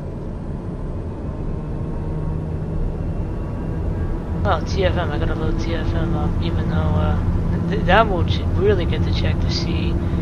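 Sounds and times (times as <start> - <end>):
airplane engines roaring during takeoff in a flight simulator video game: 0.0 - 10.2
speech: 4.5 - 10.2.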